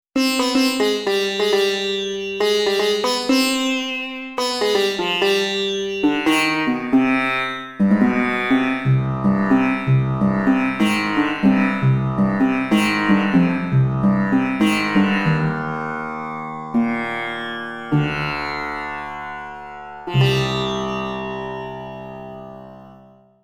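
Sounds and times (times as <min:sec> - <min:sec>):
sitar with reverb: 0:00.2 - 0:23.4.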